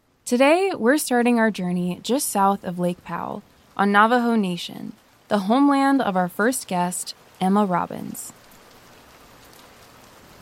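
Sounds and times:
steady rain falling: 0.0s - 10.4s
speech: 0.3s - 8.4s.

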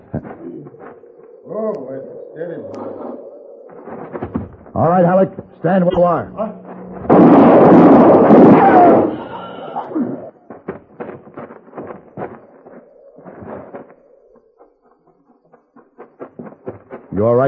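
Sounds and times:
speech: 1.5s - 3.2s, 4.8s - 6.6s, 17.2s - 17.4s
gunshot in a Western scene: 6.9s - 9.5s.

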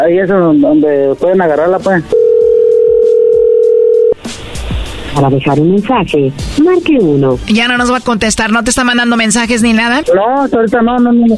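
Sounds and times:
speech: 0.0s - 2.3s, 5.2s - 11.3s
steady telephone tone after the caller hangs up: 2.1s - 4.2s.

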